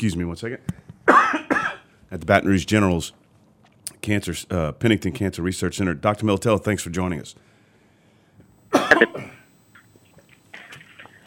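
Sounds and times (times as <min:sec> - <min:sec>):
speech: 0:00.0 - 0:00.9, 0:02.1 - 0:03.2, 0:04.0 - 0:07.5, 0:09.0 - 0:09.4
person coughing harshly: 0:01.1 - 0:01.9, 0:08.8 - 0:09.4.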